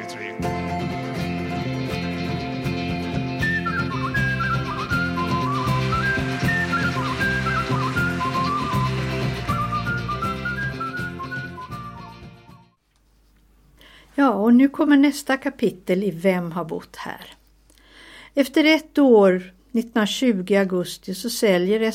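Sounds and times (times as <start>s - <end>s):
full band accompaniment with rhythmic backing: 0.5s - 12.5s
bright whistled melody: 3.0s - 12.8s
speech: 14.5s - 17.4s, 18.4s - 21.9s.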